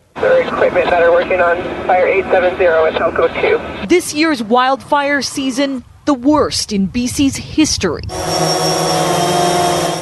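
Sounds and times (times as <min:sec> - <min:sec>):
speech: 0:00.6 - 0:08.9
drone propellers buzzing in flight surveying wildfire aftermath in British Columbia: 0:07.8 - 0:10.0.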